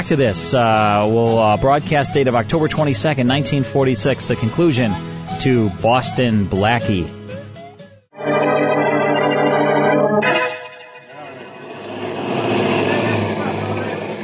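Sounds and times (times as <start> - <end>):
speech: 0.0 - 7.2
police car horn-like blare: 8.2 - 12.0
police car engines rumbling in street: 11.2 - 14.2.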